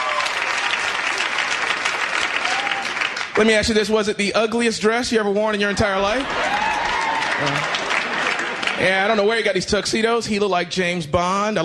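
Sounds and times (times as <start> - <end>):
applause from a crowd of women who have been bridesmaids: 0.0 - 3.7, 5.6 - 9.6
speech: 3.4 - 6.6, 7.4 - 7.8, 8.8 - 11.6.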